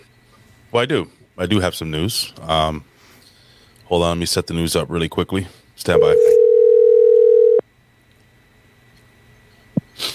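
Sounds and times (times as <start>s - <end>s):
speech: 0.7s - 2.9s, 3.9s - 6.4s
telephone electronic ring: 6.0s - 7.6s.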